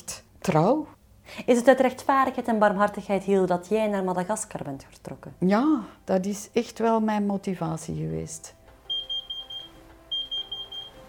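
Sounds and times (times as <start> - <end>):
speech: 0.5 - 8.6
kitchen timer alarm beeping: 8.9 - 11.0.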